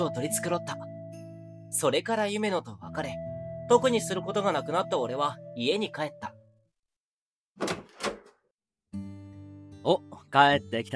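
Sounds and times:
speech: 0:00.0 - 0:00.9, 0:01.7 - 0:06.4, 0:09.8 - 0:10.9
house front door thumps while being opened: 0:07.6 - 0:08.5.

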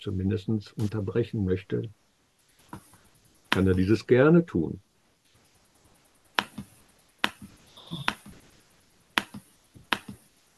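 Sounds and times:
speech: 0:00.0 - 0:02.0, 0:03.6 - 0:04.9
sharp forceful tapping clicks: 0:06.4 - 0:08.3, 0:09.2 - 0:10.2.

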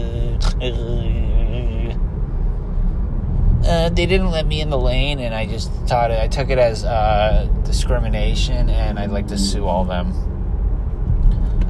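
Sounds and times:
voice imitating an idling car engine: 0:00.0 - 0:02.0, 0:08.4 - 0:10.2
low rumble: 0:00.0 - 0:11.6
speech: 0:00.6 - 0:01.1, 0:03.8 - 0:10.3.

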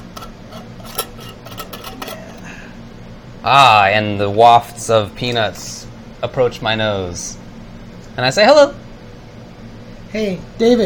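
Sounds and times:
giant jar of peanut butter being opened, clicks and clinks: 0:00.0 - 0:02.4
speech: 0:03.4 - 0:07.4, 0:08.2 - 0:08.8, 0:10.1 - 0:10.8.

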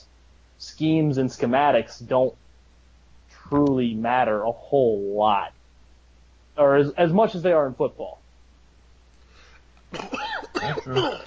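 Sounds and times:
speech: 0:00.8 - 0:02.4, 0:03.5 - 0:05.6, 0:06.6 - 0:08.2, 0:09.9 - 0:11.2
person coughing to clear phlegm from the throat: 0:09.9 - 0:11.2.

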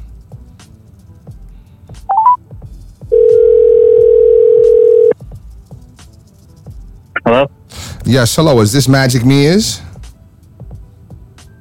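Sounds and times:
telephone dialing beeps: 0:02.1 - 0:02.4, 0:03.2 - 0:05.2
speech: 0:07.3 - 0:09.9.

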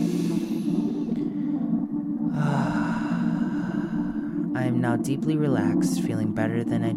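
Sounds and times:
deep breath during a guided relaxation exercise: 0:00.0 - 0:04.5
speech: 0:04.7 - 0:06.9.

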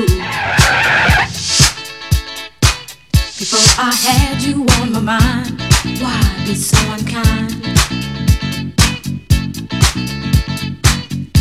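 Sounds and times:
car tires skidding and screeching: 0:00.0 - 0:01.8
thumping beat of music: 0:00.0 - 0:11.4.

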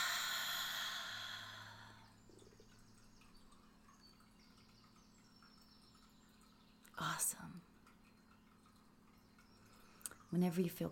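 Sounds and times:
slow deep breath during a guided relaxation exercise: 0:00.0 - 0:02.1
speech: 0:10.3 - 0:10.9.

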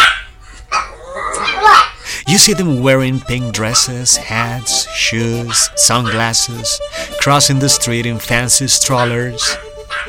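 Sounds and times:
dogs yapping: 0:00.0 - 0:02.0, 0:03.5 - 0:04.8, 0:05.4 - 0:06.6, 0:08.6 - 0:10.0
speech: 0:02.3 - 0:10.0.

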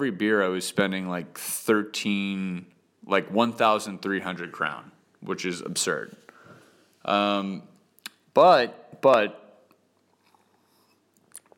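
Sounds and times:
speech: 0:00.0 - 0:06.2, 0:07.0 - 0:07.7, 0:08.4 - 0:09.4
person sipping tap water: 0:10.0 - 0:11.5.

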